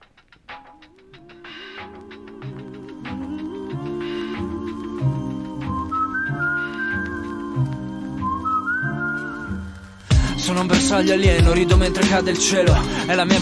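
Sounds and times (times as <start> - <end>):
song with layered chords and high whistle-like melody: 0.0 - 13.3
speech: 10.6 - 13.3.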